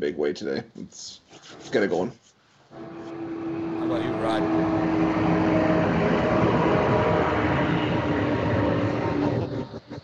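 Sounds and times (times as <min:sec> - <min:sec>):
speech: 0:00.0 - 0:03.0, 0:03.9 - 0:05.4
truck driving past: 0:02.8 - 0:09.6.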